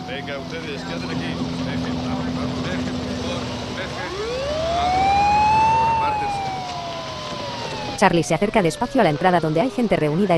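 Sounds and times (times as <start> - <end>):
low street rumble outside a smoking gym: 0.0 - 10.3
police car and fire engine sirens wailing: 0.0 - 10.3
speech: 0.1 - 4.6, 8.0 - 10.3.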